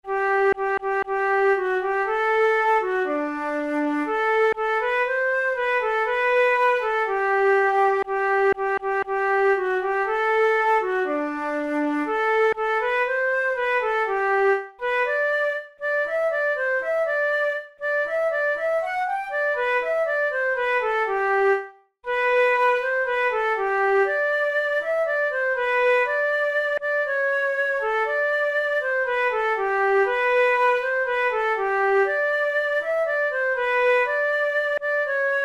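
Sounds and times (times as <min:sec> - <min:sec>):
flute melody: 0:00.0 - 0:35.4.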